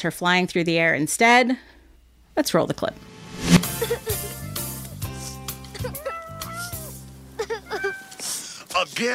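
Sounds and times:
speech: 0.0s - 1.7s, 2.4s - 4.2s, 8.8s - 9.1s
cat meowing in a film clip: 5.9s - 6.9s, 7.6s - 8.3s.

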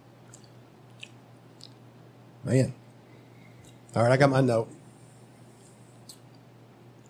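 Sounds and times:
faint low hum: 0.0s - 7.0s
whiskey swished and chewed in mouth: 0.2s - 1.9s, 6.0s - 6.4s
speech: 2.4s - 2.8s, 3.9s - 4.8s.

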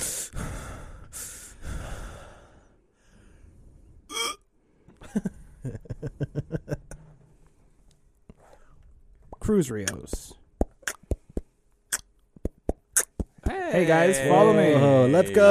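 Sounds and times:
heavy breathing into a microphone: 0.0s - 4.0s
laughter: 5.0s - 7.2s
speech: 5.2s - 5.8s, 9.5s - 10.3s, 13.8s - 15.4s.

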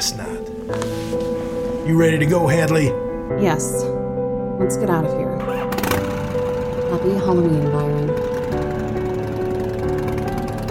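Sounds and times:
speech: 0.0s - 1.1s, 1.9s - 4.0s, 4.6s - 5.8s, 6.9s - 8.6s
motorbike engine driving off into the dark: 5.4s - 10.7s.

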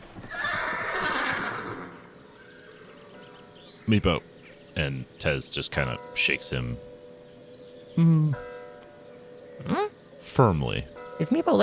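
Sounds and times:
carriage horse whinnying: 0.2s - 2.1s
speech: 3.9s - 6.9s, 8.0s - 8.5s, 9.6s - 11.6s.

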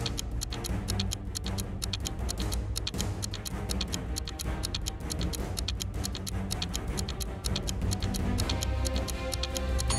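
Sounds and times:
clock ticking: 0.0s - 9.9s
low droning musical bed: 0.0s - 9.9s.

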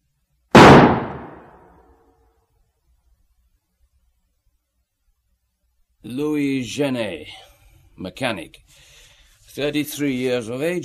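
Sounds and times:
revolver gunshot: 0.6s - 1.7s
speech: 6.0s - 8.9s, 9.6s - 10.8s.

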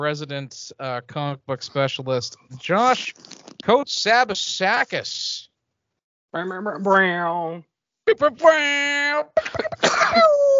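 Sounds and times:
speech: 0.0s - 5.4s, 6.3s - 10.3s
person giving short rough coughs: 9.4s - 10.3s.

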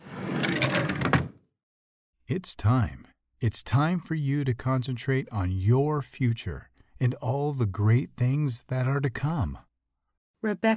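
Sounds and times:
desk drawer sliding open with a rumbling scrape: 0.0s - 1.4s
speech: 2.3s - 9.7s, 10.4s - 10.7s.

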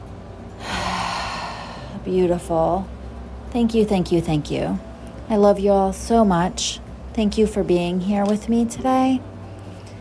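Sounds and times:
deep energizing breath in and out during a guided breathing exercise: 0.6s - 2.0s
speech: 2.0s - 9.3s.

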